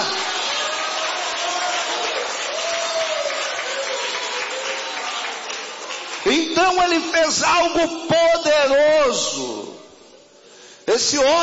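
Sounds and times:
church congregation cheering during a service: 0.0 - 7.0
church congregation applauding during a service: 0.0 - 8.2
speech: 6.7 - 9.7, 10.9 - 11.4.

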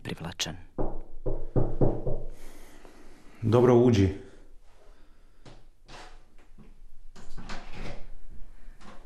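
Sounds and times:
speech: 0.2 - 0.7, 3.4 - 4.3
door creaking open slowly: 5.8 - 8.2.

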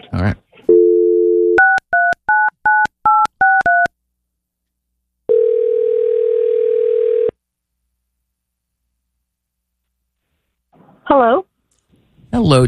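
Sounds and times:
speech: 0.2 - 0.4
steady phone dial tone: 0.7 - 1.8, 5.3 - 7.4
long loud phone ringing tone: 0.7 - 3.9, 5.3 - 7.4.

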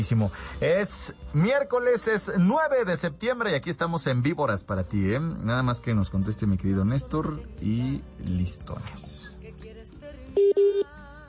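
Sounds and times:
speech: 0.0 - 9.7, 10.4 - 11.1
telephone dialing tones: 10.4 - 10.9.

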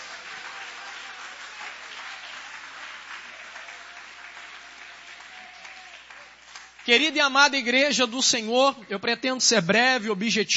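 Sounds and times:
church audience applauding: 0.0 - 7.2
speech: 6.9 - 10.5.

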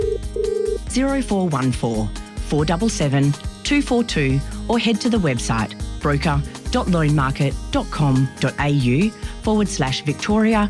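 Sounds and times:
telephone ring tone: 0.0 - 0.9
speech: 1.0 - 10.6.

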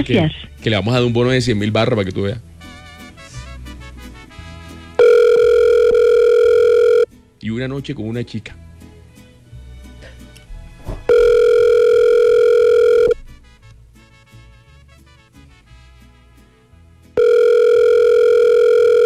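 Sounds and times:
speech: 0.0 - 2.5, 7.4 - 8.6
ringback tone of an unanswered telephone call: 5.0 - 7.1, 11.1 - 13.2, 17.2 - 19.0.

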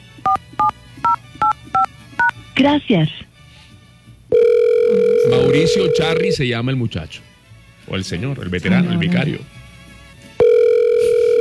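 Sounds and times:
telephone keypad tones entering a password: 0.3 - 2.4, 4.3 - 6.4, 10.4 - 11.3
speech: 2.6 - 3.3, 5.3 - 7.3, 7.9 - 9.6.

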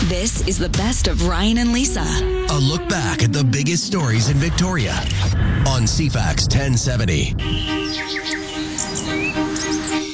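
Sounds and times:
speech: 0.1 - 8.4
birds chirping and calling: 7.4 - 10.1.

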